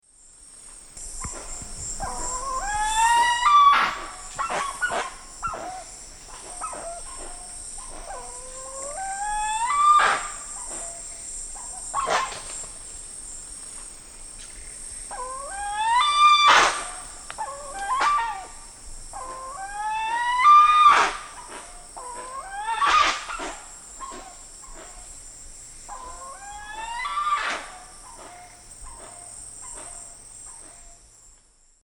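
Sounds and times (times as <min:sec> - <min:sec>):
group of Penelope jacquacu scolding in Eastern Lowlands of South America: 0:02.0 - 0:11.0, 0:11.6 - 0:12.7, 0:15.1 - 0:25.1, 0:25.9 - 0:30.8.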